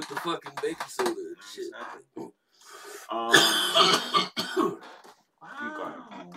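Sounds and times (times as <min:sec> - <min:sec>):
speech: 0:00.1 - 0:02.3, 0:03.1 - 0:04.7
person in a loud coughing fit with throat-clearing: 0:03.2 - 0:04.8.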